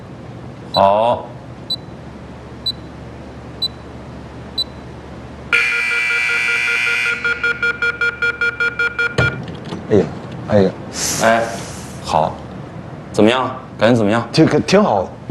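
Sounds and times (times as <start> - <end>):
speech: 0.8 - 1.3, 9.9 - 11.4, 13.2 - 15.2
electronic door lock timer beeping after being locked: 1.7 - 1.9, 2.6 - 2.9, 3.6 - 3.9, 4.6 - 4.8, 5.6 - 9.5
sustained electronic tone of an electronic door lock: 5.6 - 9.4.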